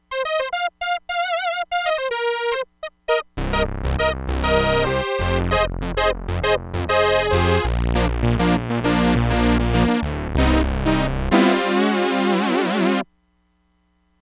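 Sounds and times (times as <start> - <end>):
Crumar Bit 99 sawtooth synth lead: 0.1 - 13.0.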